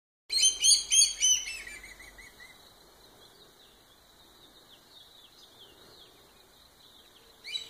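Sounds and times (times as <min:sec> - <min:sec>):
Common black hawk calling with shrill harmonic piping notes in southeast Arizona: 0:00.3 - 0:02.6, 0:07.4 - 0:07.6.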